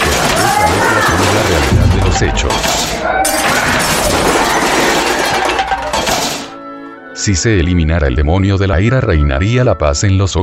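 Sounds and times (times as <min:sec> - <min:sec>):
plates and glasses smashing: 0:00.0 - 0:06.6
speech: 0:02.2 - 0:03.4, 0:07.2 - 0:10.4.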